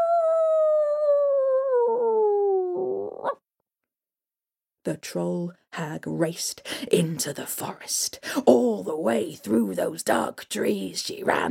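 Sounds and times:
small dog howling after being kicked: 0:00.0 - 0:03.4
speech: 0:04.8 - 0:11.4.

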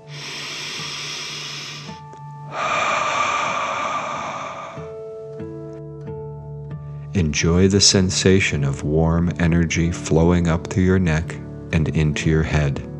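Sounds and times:
soft sustained tones: 0:00.0 - 0:05.2
deep breath in and out during a calming meditation: 0:00.0 - 0:05.3
speech: 0:07.2 - 0:12.9.

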